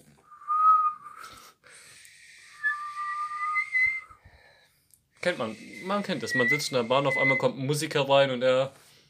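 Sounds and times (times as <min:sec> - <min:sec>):
person whistling a short wavering melody: 0:00.2 - 0:01.5, 0:02.4 - 0:04.2, 0:05.7 - 0:07.6
speech: 0:05.2 - 0:08.8.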